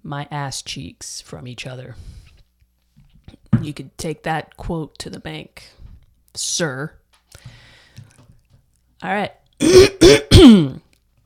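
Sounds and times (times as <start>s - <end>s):
speech: 0.1s - 2.2s, 3.6s - 5.8s, 6.4s - 7.6s, 9.0s - 10.8s
throat clearing: 9.6s - 10.8s.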